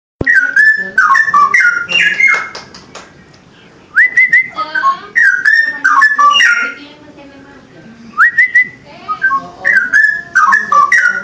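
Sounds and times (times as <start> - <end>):
Oriental magpie-robin song of clear varied whistled phrases: 0.2 - 2.6, 3.9 - 6.8, 8.2 - 11.2.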